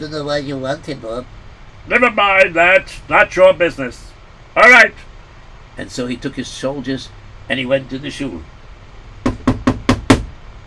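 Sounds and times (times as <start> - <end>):
speech: 0.0 - 5.1, 5.8 - 8.5
firm knocks on a wooden door: 9.2 - 10.3.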